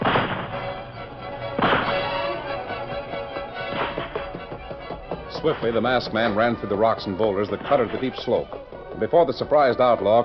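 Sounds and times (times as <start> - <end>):
rifle gunshots in an outlaw shootout among rocks and boulders on a steep slope: 1.6 - 2.2
speech: 5.4 - 10.2.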